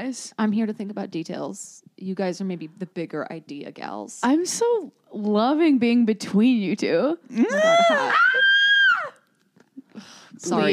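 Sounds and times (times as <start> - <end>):
speech: 0.0 - 8.5, 10.0 - 10.7
loud high-pitched scream from one person: 7.4 - 9.2.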